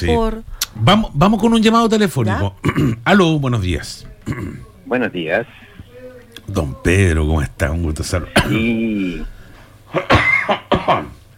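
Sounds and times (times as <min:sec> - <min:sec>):
speech: 0:00.0 - 0:05.7, 0:06.5 - 0:11.2
faint hum: 0:00.0 - 0:11.3
sharp harsh coughs: 0:02.6 - 0:03.1, 0:04.2 - 0:04.7, 0:08.3 - 0:09.3, 0:09.9 - 0:11.2.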